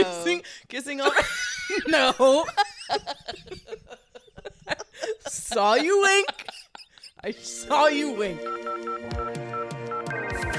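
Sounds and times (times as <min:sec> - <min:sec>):
speech: 0:00.0 - 0:04.0, 0:05.2 - 0:06.6, 0:07.2 - 0:09.5
laughter: 0:01.1 - 0:07.2
phone ringing with melodic electronic ringtone over thumping beat: 0:08.4 - 0:10.5.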